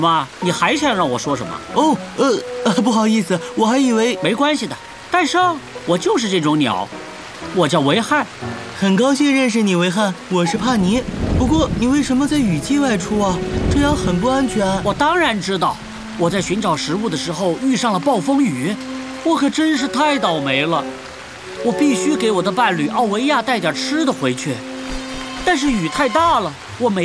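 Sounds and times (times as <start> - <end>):
voices talking: 0.0 - 6.9, 7.5 - 21.0, 21.6 - 24.6, 25.4 - 27.0
heavy rainy-season rainstorm downpour: 0.0 - 27.0
rolling thunder: 10.5 - 17.5.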